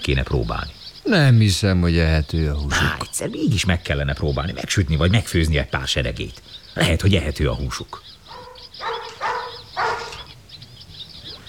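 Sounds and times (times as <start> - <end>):
speech: 0.0 - 8.2
faint bird chirps: 0.0 - 11.4
purebred hound barking: 8.3 - 10.3.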